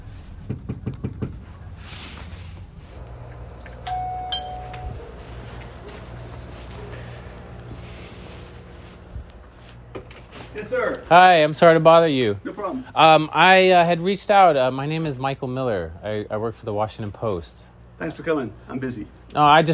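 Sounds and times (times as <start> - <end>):
quiet hum: 0.0 - 19.7
firm loud knocks on a front door in Salisbury: 0.4 - 1.4
brief ringing chime: 3.8 - 5.0
speech: 10.6 - 19.7.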